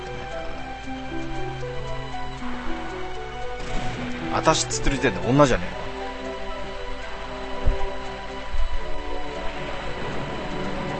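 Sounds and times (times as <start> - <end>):
steady rain pouring: 0.0 - 10.9
low thuds or rumbles: 3.6 - 10.9
speech: 4.3 - 5.8.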